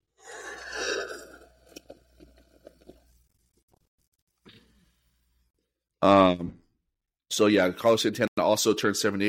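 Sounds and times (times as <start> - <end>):
sipping water from a cup: 0.1 - 3.2
person exhaling: 0.2 - 1.4
gulping and swallowing: 0.4 - 3.1
speech: 6.0 - 6.6, 7.4 - 9.2.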